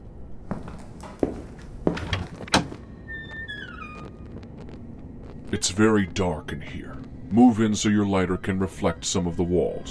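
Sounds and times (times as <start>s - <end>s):
door creaking high-pitched as it swings: 1.0s - 5.2s
closed hallway door pushed open with dull heavy thunks: 1.9s - 4.0s
speech: 5.5s - 9.8s.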